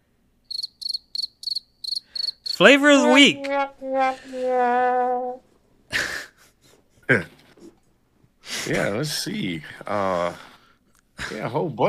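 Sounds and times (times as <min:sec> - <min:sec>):
crickets chirping: 0:00.4 - 0:02.8
speech: 0:02.6 - 0:06.1, 0:07.1 - 0:07.4, 0:08.6 - 0:10.5, 0:11.2 - 0:11.8.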